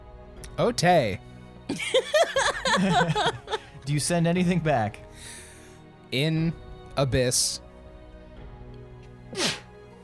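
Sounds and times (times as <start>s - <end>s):
speech: 0.6s - 5.4s, 6.1s - 7.6s
laughter: 1.7s - 3.8s
person sneezing: 9.3s - 9.7s.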